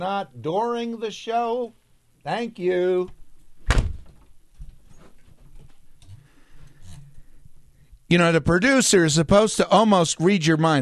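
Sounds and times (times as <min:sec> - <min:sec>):
speech: 0:00.0 - 0:03.2, 0:08.1 - 0:10.8
door banging: 0:03.6 - 0:04.3.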